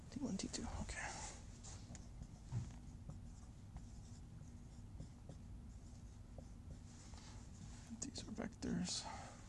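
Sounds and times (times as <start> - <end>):
speech: 0.1 - 1.4, 8.7 - 9.4
writing on a board: 1.6 - 7.8.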